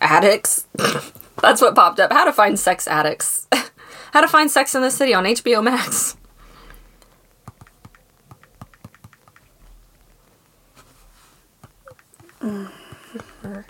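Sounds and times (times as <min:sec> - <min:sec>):
speech: 0:00.0 - 0:06.2
several people typing on computer keyboards: 0:07.4 - 0:10.0, 0:11.6 - 0:13.6.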